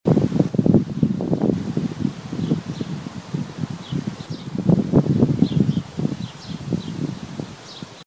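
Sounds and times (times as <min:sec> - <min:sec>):
wind noise: 0:00.1 - 0:08.0.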